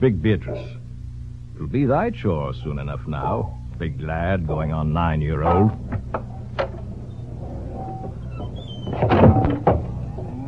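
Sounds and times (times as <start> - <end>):
speech: 0.0 - 0.8, 1.6 - 6.7
door creaking open with a light knock: 5.4 - 10.4.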